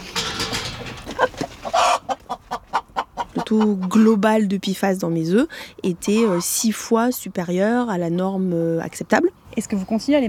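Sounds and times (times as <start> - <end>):
chickens clucking and squawking in a henhouse: 0.0 - 4.2, 6.0 - 6.9
speech: 3.5 - 10.2.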